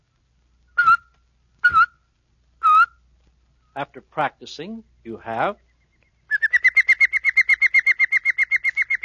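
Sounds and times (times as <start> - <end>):
whistled chirps with a tut-tut tongue motion: 0.8 - 2.0, 5.6 - 9.0
speech: 3.8 - 5.7.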